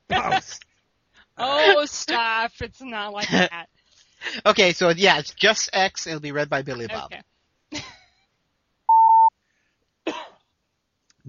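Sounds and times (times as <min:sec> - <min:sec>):
speech: 0:00.3 - 0:00.7, 0:01.4 - 0:07.3
loud steady electronic beep: 0:08.9 - 0:09.3
person clearing throat: 0:10.1 - 0:10.5.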